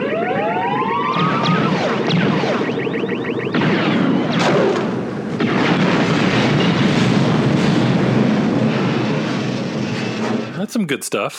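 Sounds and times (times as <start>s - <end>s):
probe droid electronic alarm of rising warbling tonal sweeps: 0.0s - 5.1s
loud sustained explosion with plywood sheet snapping: 3.5s - 10.5s
speech: 10.8s - 11.3s.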